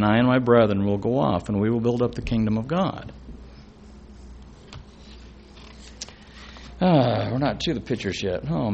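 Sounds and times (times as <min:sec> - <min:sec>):
speech: 0:00.0 - 0:03.2, 0:06.8 - 0:08.7
paper pages being turned: 0:04.3 - 0:06.8.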